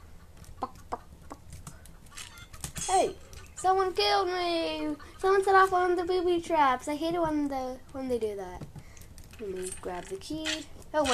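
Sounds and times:
low steady hum: 0:00.0 - 0:11.1
video game chicken clucking: 0:00.1 - 0:02.6
speech: 0:03.0 - 0:08.7, 0:09.4 - 0:11.1.

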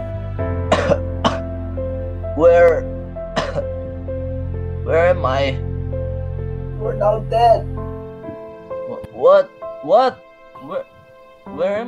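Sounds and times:
steady low droning background: 0:00.0 - 0:11.7
man coughing: 0:00.7 - 0:01.4, 0:03.4 - 0:03.7
speech: 0:02.4 - 0:02.9, 0:04.9 - 0:05.6, 0:07.0 - 0:07.7, 0:09.2 - 0:10.9, 0:11.5 - 0:11.8.

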